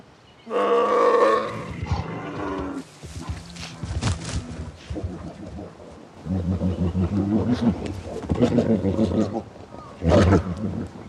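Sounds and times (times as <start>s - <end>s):
male bears roaring and growling while fighting: 0.5s - 11.0s
scuffling of large animals clashing: 1.8s - 5.7s.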